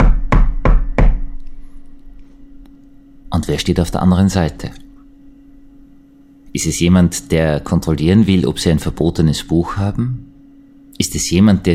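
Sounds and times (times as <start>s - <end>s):
loud knocking on an apartment door: 0.0s - 1.3s
low room hum: 0.0s - 11.7s
speech: 3.5s - 4.8s, 6.5s - 10.3s, 11.0s - 11.7s.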